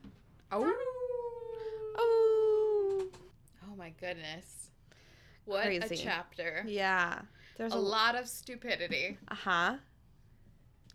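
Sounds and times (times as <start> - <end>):
speech: 0.5 - 0.9, 3.9 - 4.6, 5.5 - 9.9
person imitating a wolf howl: 0.5 - 3.2.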